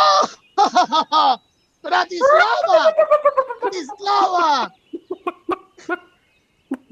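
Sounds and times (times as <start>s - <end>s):
human voices and exclamations: 0.0s - 0.4s, 1.9s - 4.7s
laughter: 0.3s - 6.0s
speech: 0.7s - 4.8s, 5.8s - 6.1s
chickens clucking: 1.9s - 6.1s, 6.7s - 6.9s.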